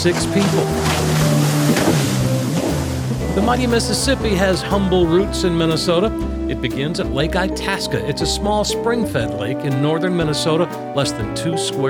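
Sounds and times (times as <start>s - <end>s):
speech: 0.0s - 1.9s, 3.4s - 11.8s
rushing wash of water: 0.0s - 5.6s
motorboat engine droning: 0.0s - 6.5s.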